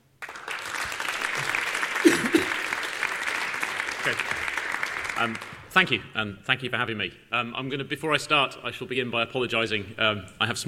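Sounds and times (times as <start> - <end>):
talk audience applause welcoming the presenter: 0.1 - 5.7
speech: 5.2 - 10.6.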